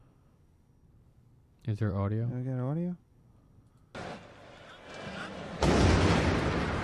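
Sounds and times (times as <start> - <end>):
speech: 1.6 - 3.0
loud blast during a soccer game: 4.0 - 6.8
explosive bang during a soccer game: 5.0 - 6.8.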